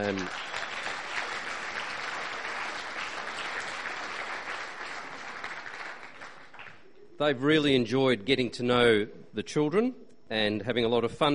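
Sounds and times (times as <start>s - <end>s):
speech: 0.0s - 0.6s, 7.2s - 11.3s
room full of people applauding: 0.0s - 6.8s.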